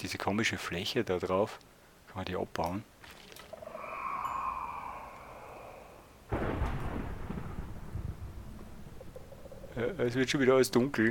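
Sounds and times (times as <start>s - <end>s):
speech: 0.0s - 2.9s, 9.8s - 11.0s
soft tonal drone: 3.6s - 6.3s
thunder crack and rumble: 6.3s - 10.4s.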